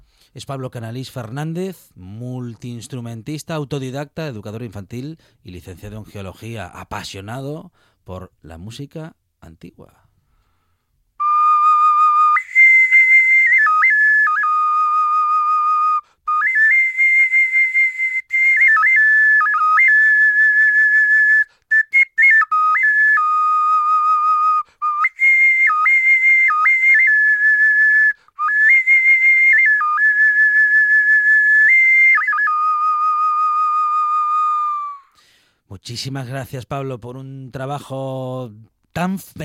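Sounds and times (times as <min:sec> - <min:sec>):
speech: 0:00.4 - 0:10.1, 0:35.8 - 0:39.4
ceramic zoomorphic whistle playing sustained notes: 0:11.2 - 0:35.2.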